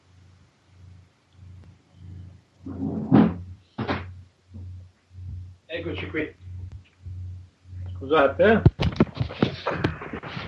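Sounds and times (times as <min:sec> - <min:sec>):
faint steady low hum: 0:00.0 - 0:10.4
door being closed: 0:02.7 - 0:04.1
speech: 0:05.8 - 0:06.4, 0:08.0 - 0:08.7.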